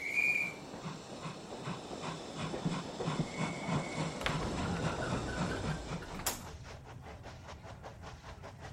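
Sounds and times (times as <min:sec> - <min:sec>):
steam train whistle: 0:00.0 - 0:00.6
steam train chugging and clattering while departing the station: 0:00.0 - 0:08.7.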